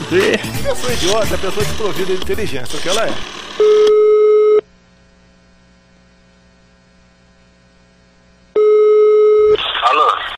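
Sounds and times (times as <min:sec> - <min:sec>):
speech: 0:00.1 - 0:04.0
ringback tone while placing a call to a cellphone: 0:03.2 - 0:04.6, 0:08.6 - 0:09.6.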